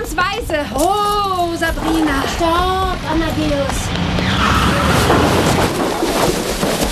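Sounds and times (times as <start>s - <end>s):
speech: 0.1s - 6.3s
car ploughing into a hay wagon in a farmyard: 4.5s - 6.9s.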